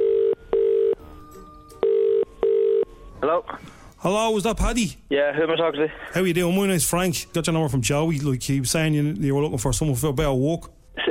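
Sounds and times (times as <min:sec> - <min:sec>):
telephone ringback tone of an outgoing call: 0:00.0 - 0:03.1
speech: 0:03.2 - 0:10.8.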